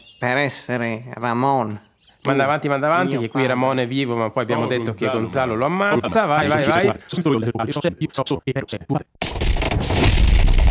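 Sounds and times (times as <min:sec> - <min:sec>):
speech: 0:00.2 - 0:10.2
rumbling blasts in a battle scene: 0:09.2 - 0:10.6.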